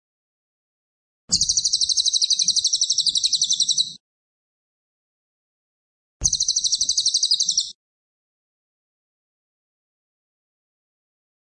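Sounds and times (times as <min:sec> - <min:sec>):
cililin chattering trill: 0:01.3 - 0:04.0, 0:06.2 - 0:07.8.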